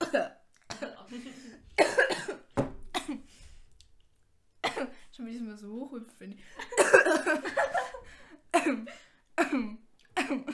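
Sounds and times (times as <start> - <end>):
person coughing harshly: 0.0 - 3.3, 4.6 - 5.0, 6.7 - 7.3, 8.5 - 10.5
speech: 0.1 - 0.4, 5.5 - 7.6.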